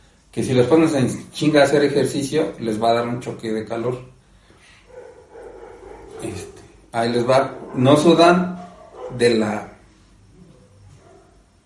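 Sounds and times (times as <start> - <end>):
speech: 0.4 - 4.2, 6.2 - 9.7
dog vocalizing with grunting barks or whines: 4.9 - 9.2.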